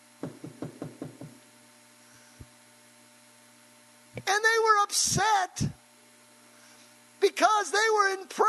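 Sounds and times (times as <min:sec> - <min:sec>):
steady low electrical hum: 0:00.0 - 0:08.4
knocking on a door: 0:00.2 - 0:01.4
speech: 0:04.2 - 0:05.8, 0:07.2 - 0:08.4.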